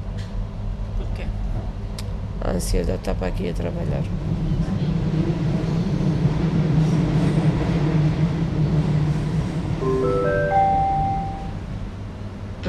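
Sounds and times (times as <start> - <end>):
commuter train on the line to Cascais rumbling with a deep low drone: 0.0 - 12.6
speech: 2.4 - 4.5
commuter train rising tonal whines as it slows into the station: 4.2 - 12.6.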